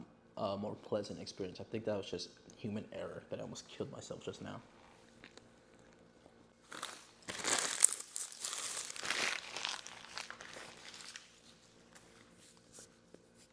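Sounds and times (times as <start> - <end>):
speech: 0.4 - 4.8
paper bag used as a napkin being crumpled: 6.7 - 11.6.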